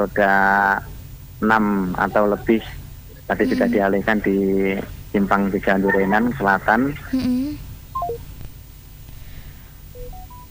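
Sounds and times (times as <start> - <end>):
speech: 0.0 - 8.2
low hum: 0.0 - 10.4
laughter: 3.3 - 4.3, 5.4 - 7.3
telephone tones on a dropped phone line: 10.0 - 10.4.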